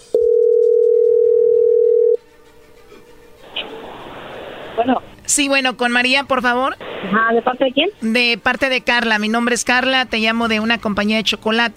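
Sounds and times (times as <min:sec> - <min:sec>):
telephone tone of an outgoing phone call: 0:00.1 - 0:02.2
faint phone line hiss: 0:03.4 - 0:05.4, 0:06.5 - 0:07.7
speech: 0:04.8 - 0:11.7.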